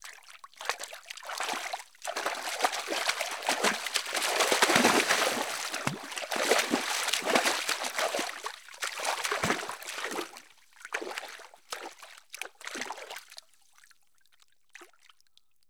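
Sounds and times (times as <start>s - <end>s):
soft splashes: 0.6s - 13.2s.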